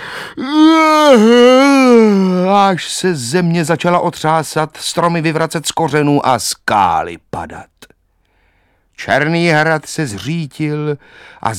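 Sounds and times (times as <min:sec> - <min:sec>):
human voice imitating the mighty yawn of a magical figure in a fairy tale: 0:00.0 - 0:02.5
speech: 0:00.4 - 0:07.8, 0:09.0 - 0:11.5.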